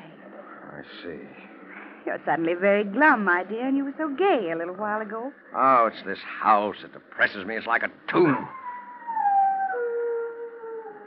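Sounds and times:
speech: 0:00.8 - 0:08.6
dog howling: 0:08.3 - 0:11.0.

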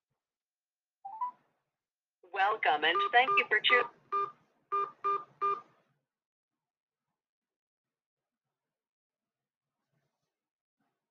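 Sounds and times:
speech: 0:02.4 - 0:04.2
electronic telephone keypad tones: 0:02.8 - 0:05.6.

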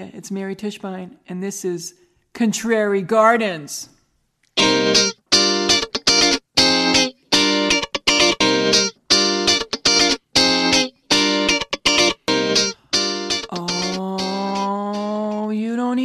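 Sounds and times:
speech: 0:00.0 - 0:04.0, 0:04.6 - 0:05.1
distorted effects-heavy guitar podcast theme music: 0:04.6 - 0:16.0.

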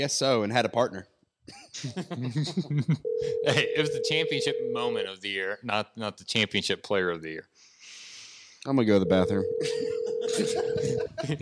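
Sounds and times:
speech: 0:00.0 - 0:07.7, 0:08.6 - 0:11.4
laughter: 0:01.6 - 0:03.9, 0:09.6 - 0:11.4
telephone ringing tone of an unanswered phone call: 0:03.0 - 0:05.0, 0:09.0 - 0:11.2.

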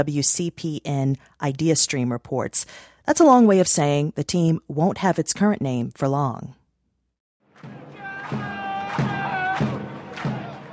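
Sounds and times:
speech: 0:00.0 - 0:06.6
bass drum booming at a ballgame: 0:07.6 - 0:10.5
noisy stadium crowd shouting and chanting: 0:07.6 - 0:10.7.

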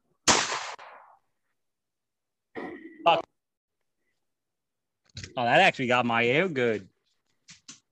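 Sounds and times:
loud gunshots: 0:00.3 - 0:01.1
speech: 0:03.0 - 0:03.3, 0:05.4 - 0:06.9.

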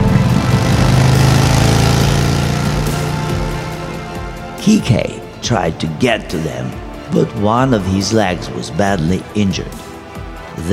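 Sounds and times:
motorcycle engine revving: 0:00.0 - 0:04.6
speech: 0:04.7 - 0:09.8, 0:10.6 - 0:10.7.

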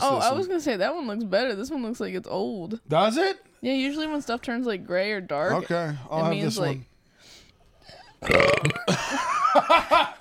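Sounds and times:
speech: 0:00.0 - 0:06.9, 0:08.2 - 0:10.1
two people burping together: 0:07.9 - 0:09.3
laughter: 0:08.8 - 0:10.1.

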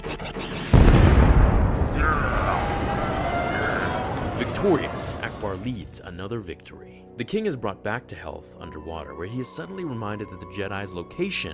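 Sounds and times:
missiles being fired in a battle: 0:00.7 - 0:05.6
explosion boom: 0:00.7 - 0:06.0
speech: 0:04.6 - 0:11.5.

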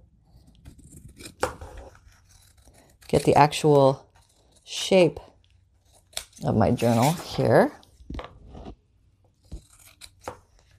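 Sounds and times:
scissors trimming excess paper: 0:00.3 - 0:05.1, 0:05.8 - 0:07.5, 0:09.5 - 0:10.7
speech: 0:03.1 - 0:04.1, 0:04.7 - 0:05.3, 0:06.4 - 0:08.2.

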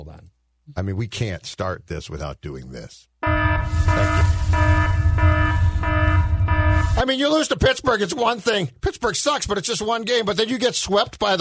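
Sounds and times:
speech: 0:00.0 - 0:04.8, 0:07.0 - 0:11.3
buzzy electronic alarm blaring: 0:03.2 - 0:07.1
steady low rumble: 0:03.6 - 0:07.0.

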